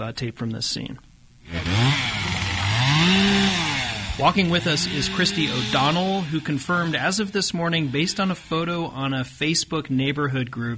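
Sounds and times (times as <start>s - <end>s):
speech: 0.0s - 2.4s, 3.0s - 3.6s, 4.2s - 10.7s
chainsaw run by a fire crew putting out hot spots after a wildfire: 1.5s - 9.0s.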